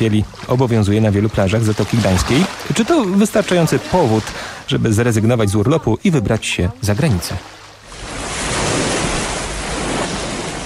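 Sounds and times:
speech: 0.0 - 7.6
Baltic Sea waves on the beach at Jantar on the Polish coast: 0.0 - 10.6.

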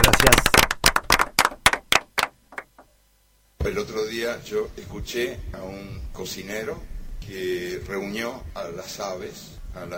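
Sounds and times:
hand claps: 0.0 - 2.9
speech: 3.7 - 9.9.

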